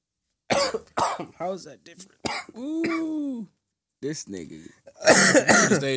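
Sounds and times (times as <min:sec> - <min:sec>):
smoker's cough: 0:00.5 - 0:01.4, 0:02.2 - 0:03.1, 0:05.0 - 0:05.9
speech: 0:00.7 - 0:05.9.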